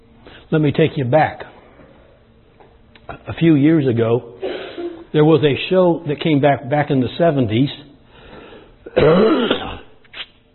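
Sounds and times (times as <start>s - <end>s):
speech: 0.5s - 1.5s, 3.3s - 4.4s, 5.1s - 7.9s, 9.0s - 9.5s
harsh raspy cough: 4.4s - 5.1s, 8.9s - 10.0s
throat clearing: 8.9s - 10.0s.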